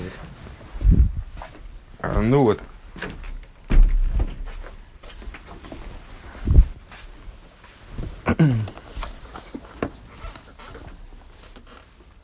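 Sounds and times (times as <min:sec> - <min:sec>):
faint rustling: 0:00.0 - 0:12.2
speech: 0:02.2 - 0:03.1
door being pushed shut with knocks, creak and thump: 0:03.0 - 0:04.5.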